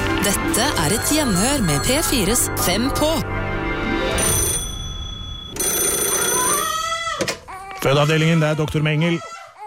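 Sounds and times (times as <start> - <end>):
telephone ringing with electronic trill: 0.2 - 3.2, 4.1 - 7.1
speech: 0.2 - 3.4, 7.8 - 9.3.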